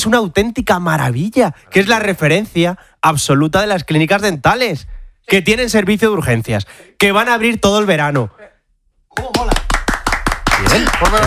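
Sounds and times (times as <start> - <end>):
speech: 0.0 - 8.4, 10.7 - 11.2
audience applause: 9.3 - 11.2.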